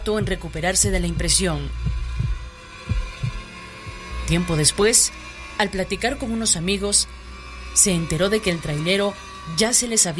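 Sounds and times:
speech: 0.0s - 2.0s, 4.3s - 7.2s, 7.8s - 10.1s
heartbeat thumping in low double pulses: 0.0s - 4.9s
faint constant hum: 0.0s - 10.1s.

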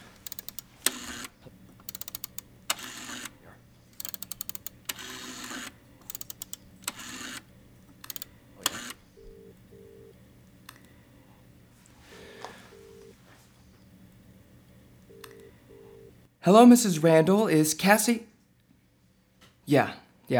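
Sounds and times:
clattering clicks and handling noises of a telephone: 0.0s - 9.4s
speech: 16.4s - 18.3s, 19.7s - 20.3s.

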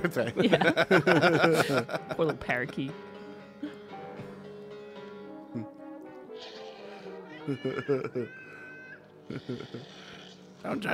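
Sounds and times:
laughter: 0.0s - 2.9s, 7.4s - 8.6s, 9.2s - 9.9s
speech: 0.0s - 3.7s, 7.5s - 8.4s, 9.3s - 10.9s
cat meowing and yowling: 6.4s - 9.1s.

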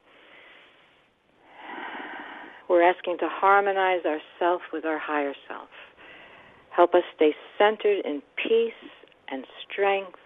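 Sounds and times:
deep breaths during a guided centering exercise: 0.0s - 2.7s, 5.7s - 6.7s
speech: 2.7s - 5.9s, 6.8s - 10.2s.

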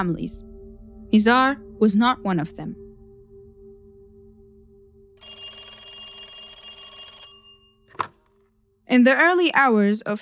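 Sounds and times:
speech: 0.0s - 0.5s, 1.1s - 2.8s, 8.9s - 10.2s
low hum: 0.0s - 5.2s
telephone bell ringing: 5.2s - 8.2s
telephone receiver lifted with a sharp click: 7.9s - 8.2s.

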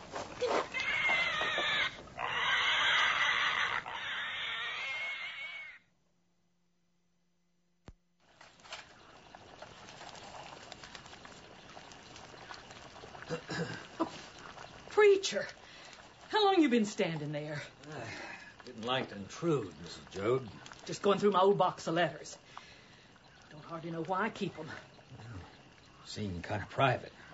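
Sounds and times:
pigs squealing while stuck with a butchering knife in a barn: 0.4s - 5.8s
speech: 15.3s - 15.6s, 16.6s - 22.4s, 23.7s - 24.9s, 26.1s - 27.2s.

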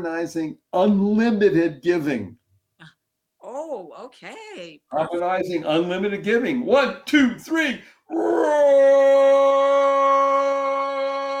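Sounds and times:
speech: 0.0s - 3.0s, 3.6s - 10.7s
person imitating a roar: 8.1s - 11.3s.

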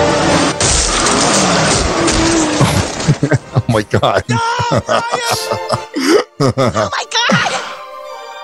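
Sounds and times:
tires screeching: 0.0s - 3.5s
car engine roaring: 0.0s - 3.6s
car crash impact hitting a pedestrian: 0.2s - 3.4s
laughter: 2.6s - 6.9s
speech: 3.2s - 7.4s.

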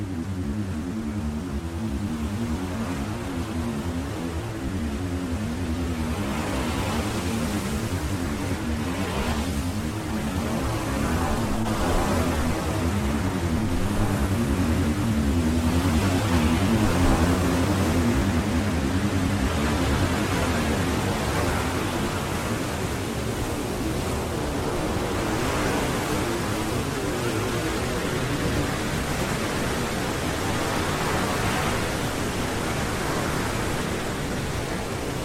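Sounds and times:
crashing waves at Bodega Bay: 0.0s - 35.2s
slowly evolving synth pads: 0.0s - 35.2s.

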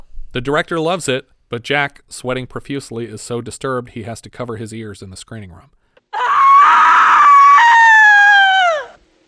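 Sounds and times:
speech: 0.4s - 5.8s
woman's scream sound effect: 6.1s - 9.0s.

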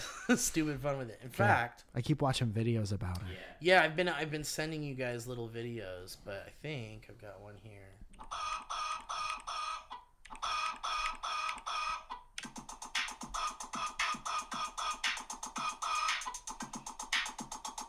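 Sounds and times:
speech: 0.3s - 8.5s
backyard chickens clucking: 8.2s - 12.4s, 13.3s - 16.7s.

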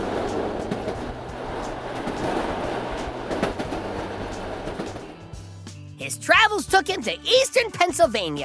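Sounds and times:
wheels clicking over track joints: 0.0s - 5.1s
train rumbling on rails: 0.0s - 5.9s
speech: 6.1s - 8.4s.

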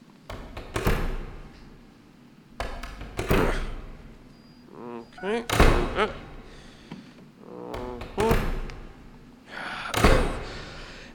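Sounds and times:
doors being shut with solid thuds and clunks: 0.3s - 1.8s, 2.6s - 4.2s, 5.1s - 7.0s, 7.7s - 9.2s, 9.8s - 10.9s
speech: 5.2s - 6.2s.

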